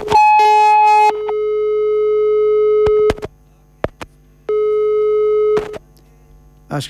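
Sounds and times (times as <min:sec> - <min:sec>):
electronic telephone busy tone after call disconnects: 0:00.0 - 0:03.2, 0:04.5 - 0:05.8.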